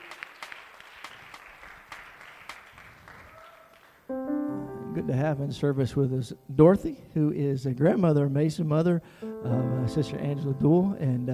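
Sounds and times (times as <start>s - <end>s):
crowd applauding: 0.0s - 4.1s
sustained organ chord: 4.1s - 7.2s, 9.1s - 11.3s
speech: 5.0s - 11.3s.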